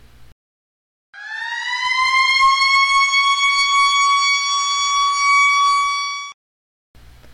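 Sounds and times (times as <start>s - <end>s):
loud piercing siren wailing: 1.2s - 6.4s.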